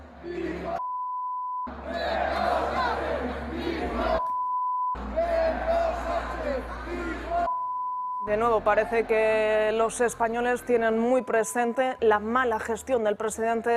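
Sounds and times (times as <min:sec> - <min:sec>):
stadium crowd chanting against the prime minister at a sports event: 0:00.0 - 0:00.8, 0:01.7 - 0:04.3, 0:05.0 - 0:07.5, 0:08.3 - 0:09.8
speech: 0:00.2 - 0:00.9, 0:08.3 - 0:13.7
steady pitched beep tone: 0:00.8 - 0:01.7, 0:04.2 - 0:05.0, 0:07.5 - 0:08.4, 0:10.7 - 0:12.6.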